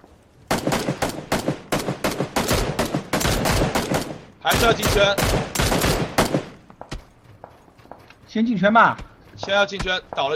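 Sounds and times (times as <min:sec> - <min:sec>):
sniper rifle shots in a battle-royale shooting video game: 0:00.5 - 0:07.0
speech: 0:04.5 - 0:05.5, 0:08.4 - 0:10.3.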